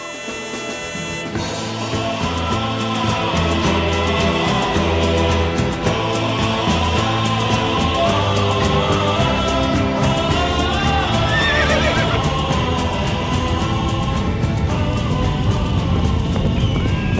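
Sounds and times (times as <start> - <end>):
herd of horses galloping: 0.8 - 17.1
horses neighing and whinnying: 11.0 - 12.4.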